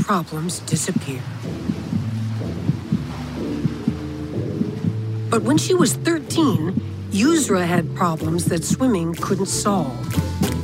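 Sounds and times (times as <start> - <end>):
speech: 0.1 - 2.8, 5.3 - 10.4
heartbeat thumping in paired beats: 0.8 - 9.4
low droning hum with a watery wash: 1.2 - 8.9.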